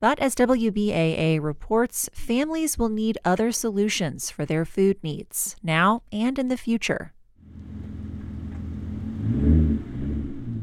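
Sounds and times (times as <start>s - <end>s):
speech: 0.0s - 7.2s
line of car engines idling at a food distribution: 7.4s - 10.6s.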